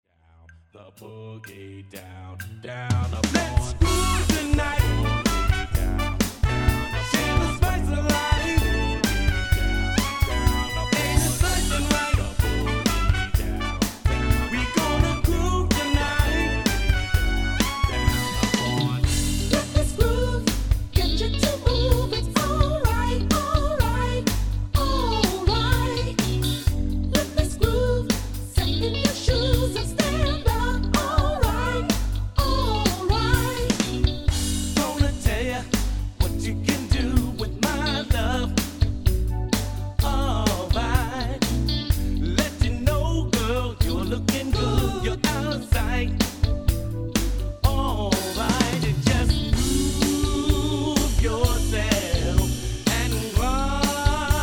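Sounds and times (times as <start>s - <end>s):
soulful R&B music: 0.5s - 54.4s.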